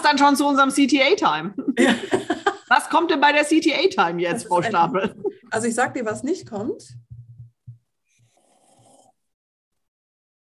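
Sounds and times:
speech: 0.0 - 7.0
laughter: 1.5 - 2.9, 4.0 - 6.4
person snoring: 8.2 - 9.2.

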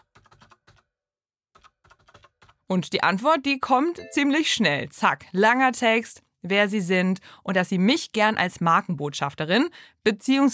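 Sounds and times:
keyboard typing a private message: 0.0 - 0.9, 1.6 - 2.6
speech: 2.7 - 10.5.

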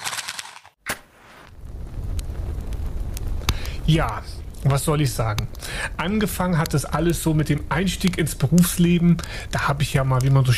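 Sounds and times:
match strike and flare lighting a campfire: 0.0 - 4.7
campfire popping and crackling: 0.0 - 10.5
campfire flames roaring: 1.1 - 10.5
speech: 3.9 - 10.5.

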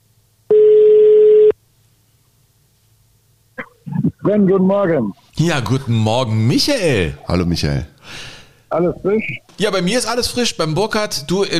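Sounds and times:
ringing tone of a call from a mobile phone: 0.5 - 1.6
speech: 4.2 - 11.5.

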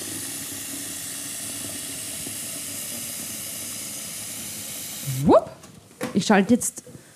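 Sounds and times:
lukewarm tap water pouring into a large pot for pasta: 0.0 - 5.0
speech: 5.1 - 5.4, 6.2 - 7.0.

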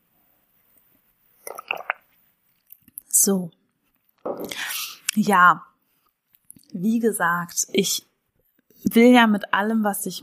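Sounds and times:
sipping and swallowing tea: 1.4 - 2.1
speech: 3.2 - 3.6, 5.2 - 5.7, 6.7 - 8.1, 8.8 - 10.2.

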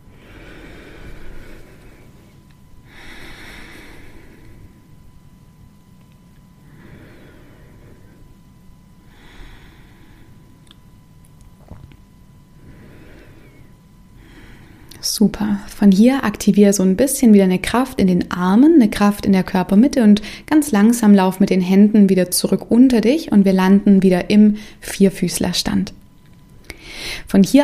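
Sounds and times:
slow deep breaths into the chest: 0.0 - 5.0, 6.6 - 10.6, 12.5 - 15.0, 26.7 - 27.3
speech: 15.1 - 26.0, 27.2 - 27.6.

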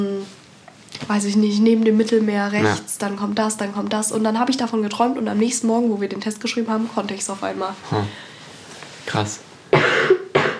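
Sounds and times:
speech: 1.1 - 8.3, 9.1 - 9.5
person coughing: 9.7 - 10.5.

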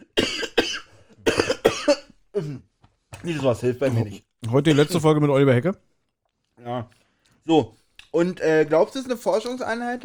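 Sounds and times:
person coughing harshly: 0.0 - 2.7
speech: 2.4 - 5.9, 6.6 - 10.0.

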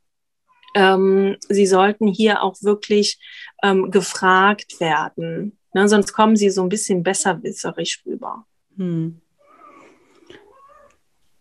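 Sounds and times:
speech: 0.8 - 9.2
male cat meowing with a toy in its mouth: 9.4 - 11.0.

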